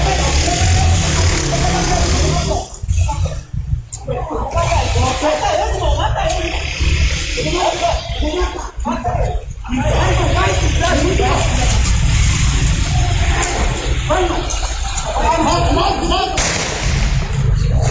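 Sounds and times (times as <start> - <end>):
agitated voices of criminals urging to kill: 0.0 - 17.8
laughter: 0.0 - 17.8
rumbling ambient sound: 0.0 - 17.8
single sharp gunshot in security-camera audio of a crime: 16.4 - 17.6.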